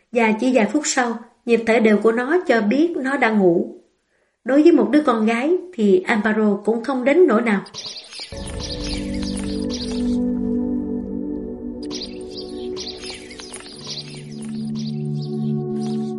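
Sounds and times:
speech: 0.1s - 3.8s, 4.4s - 8.7s
bird singing overhead with bright high chirps and tweets: 7.5s - 16.1s
steady low sustained tones: 8.3s - 16.1s.

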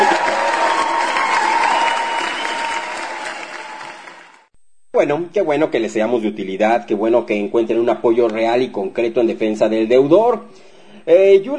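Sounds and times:
crowd applauding: 0.0s - 4.5s
speech: 5.0s - 11.5s.

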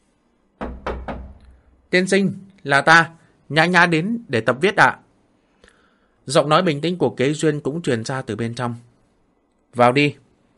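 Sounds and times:
knocking on the door of a courtyard gate: 0.6s - 1.6s
speech: 1.9s - 5.0s, 6.3s - 8.9s, 9.7s - 10.2s.

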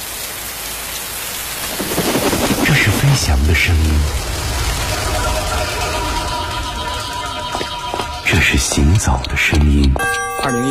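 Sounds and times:
steady heavy rain: 0.0s - 9.9s
wind: 0.0s - 10.2s
low rumble of thunder: 1.4s - 9.4s
speech: 3.2s - 4.3s, 8.5s - 10.7s.

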